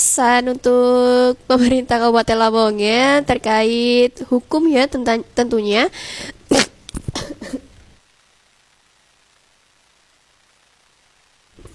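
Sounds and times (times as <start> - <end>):
speech: 0.2 - 6.6
harsh coughs: 6.5 - 7.7.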